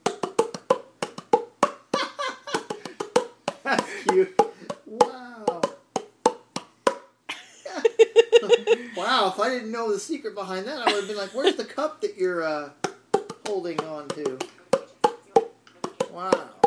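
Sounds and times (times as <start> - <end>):
hollow pops from cupped hands clapped over a mouth: 0.0 - 1.9, 2.5 - 7.1, 12.8 - 16.6
people laughing: 2.0 - 3.0, 3.7 - 4.4, 7.3 - 9.4, 10.8 - 11.8
speech: 3.7 - 5.1, 9.0 - 12.8, 13.5 - 14.5, 16.2 - 16.5.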